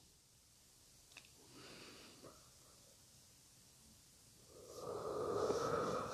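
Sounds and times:
soft breaths: 0:01.4 - 0:03.0, 0:04.4 - 0:06.1
long deep yawn: 0:04.5 - 0:06.1.

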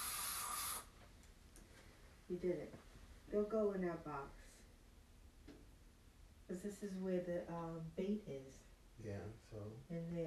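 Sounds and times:
aerosol insecticide spray hissing: 0:00.0 - 0:00.9
speech: 0:02.3 - 0:04.4, 0:06.5 - 0:10.2.

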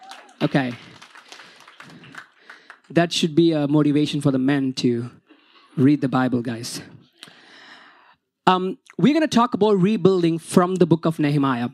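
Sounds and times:
crowd clapping: 0:00.0 - 0:03.2
speech: 0:00.4 - 0:00.9, 0:02.9 - 0:05.2, 0:05.8 - 0:07.0, 0:08.5 - 0:11.7.

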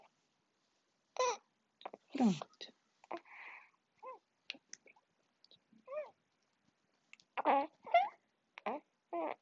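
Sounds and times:
baby babbling and cooing: 0:01.2 - 0:02.1, 0:05.8 - 0:06.2, 0:07.4 - 0:09.4
adult voice: 0:02.2 - 0:02.7
speech: 0:02.2 - 0:02.8.

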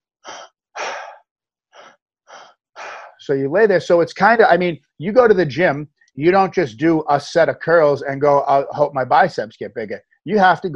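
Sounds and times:
forceful two-part breathing through the mouth lying flat on the back: 0:00.3 - 0:03.2
speech: 0:03.2 - 0:10.7.

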